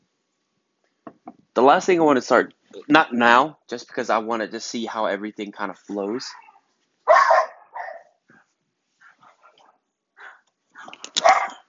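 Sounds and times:
speech: 1.6 - 6.4
dogs barking: 6.2 - 8.4, 9.0 - 10.4, 11.2 - 11.6
dog yips and whimpers: 6.3 - 8.2, 11.2 - 11.6.

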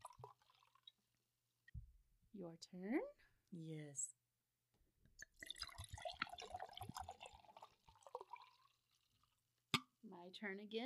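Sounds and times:
liquid glugging from a bottle into a glass: 0.0 - 1.0, 5.2 - 9.9
speech: 2.4 - 4.2, 10.2 - 10.8.

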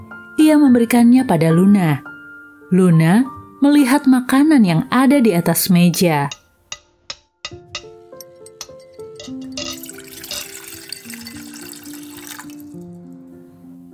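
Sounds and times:
speech: 0.4 - 2.1, 2.7 - 6.4
light clinks: 7.8 - 12.5
water pouring into a glass at the dining table: 9.5 - 13.1.

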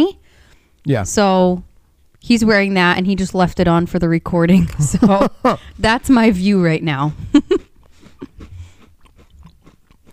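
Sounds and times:
speech: 0.8 - 7.6
person chewing crunchy food: 7.2 - 10.1.

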